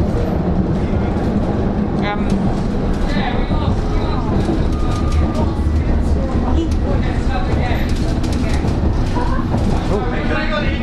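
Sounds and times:
subway train rumbling and clattering at a platform: 0.0s - 10.8s.

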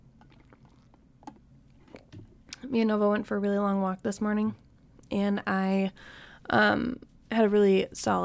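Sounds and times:
gulping swallows: 0.2s - 1.0s
sipping water: 0.2s - 2.6s
speech: 2.7s - 8.2s.

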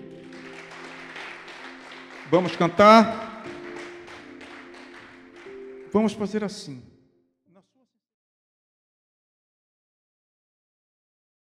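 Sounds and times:
audience clapping: 0.0s - 6.5s
speech: 2.3s - 3.3s, 6.0s - 6.9s.

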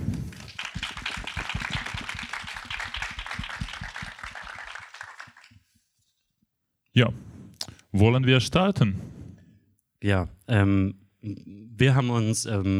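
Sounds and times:
audience applause: 0.0s - 5.5s
speech: 7.0s - 7.3s, 7.9s - 9.1s, 10.0s - 12.7s.

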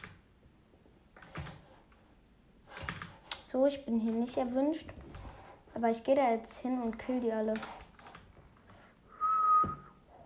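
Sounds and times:
speech: 3.5s - 5.0s, 5.8s - 7.8s
person whistling: 9.1s - 10.0s.

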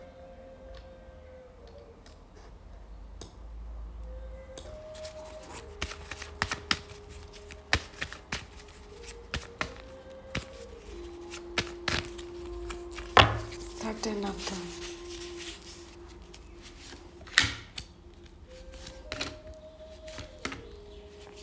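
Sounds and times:
faint low hum: 0.0s - 21.4s
tarot cards being shuffled: 4.6s - 21.4s.

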